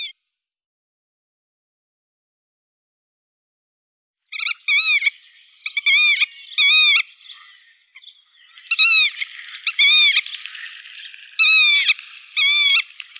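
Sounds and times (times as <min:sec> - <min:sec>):
black-tailed godwit Limosa limosa calling: 0:04.4 - 0:13.1.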